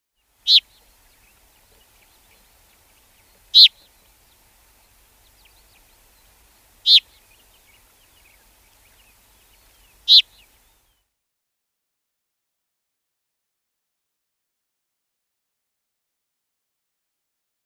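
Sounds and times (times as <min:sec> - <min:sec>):
Black-crowned Sparrow-Lark calls: 0:00.4 - 0:11.0.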